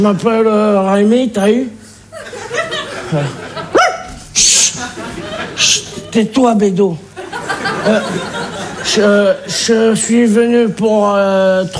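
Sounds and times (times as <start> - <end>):
speech: 0.0 - 2.3, 3.1 - 3.4, 5.6 - 7.1, 7.8 - 11.7
laughter: 2.1 - 6.4, 7.1 - 9.9
dog barking sharply: 3.8 - 4.2
loud hissing noise: 4.2 - 6.1.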